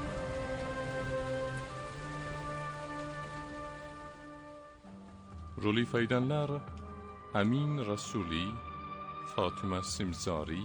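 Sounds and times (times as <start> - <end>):
steady rainfall: 0.0 - 7.8
speech: 5.6 - 8.7, 9.3 - 10.6.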